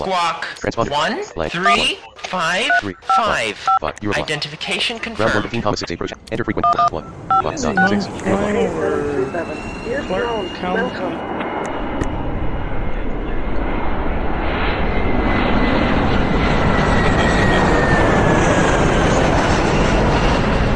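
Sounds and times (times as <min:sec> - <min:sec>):
speech: 0:00.0 - 0:11.6
airplane engine roar: 0:06.5 - 0:20.7.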